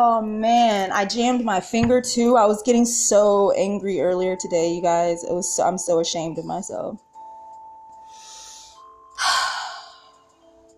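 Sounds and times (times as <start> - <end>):
speech: 0.0 - 7.1
louder forceful exhale: 8.1 - 10.1
long airy deep inhale: 8.1 - 10.2.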